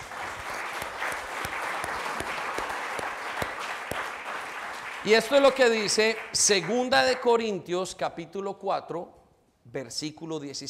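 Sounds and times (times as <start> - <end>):
audience applauding during a sermon: 0.0 - 7.3
speech: 5.0 - 10.6.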